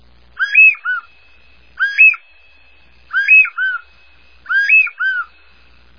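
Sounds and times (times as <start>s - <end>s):
covey of birds: 0.4s - 1.1s, 1.8s - 2.2s, 3.1s - 3.9s, 4.5s - 5.5s.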